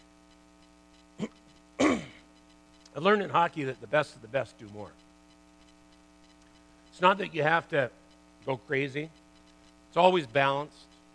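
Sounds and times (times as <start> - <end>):
faint steady hum: 0.0 - 11.1
speech: 1.2 - 1.4, 3.0 - 5.0, 7.0 - 9.2, 9.9 - 10.9
gravelly throat clearing: 1.2 - 2.3.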